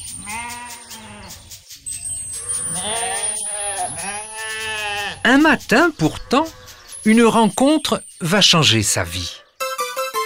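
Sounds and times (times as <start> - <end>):
sheep bleating: 0.2 - 1.4, 2.4 - 5.3
speech: 5.3 - 9.4.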